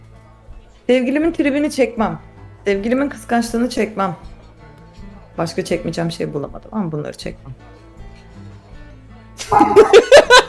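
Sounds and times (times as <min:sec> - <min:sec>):
speech: 0:00.9 - 0:04.3, 0:05.4 - 0:07.8, 0:09.5 - 0:10.4
laughter: 0:09.4 - 0:10.4
dog barking: 0:09.5 - 0:10.2.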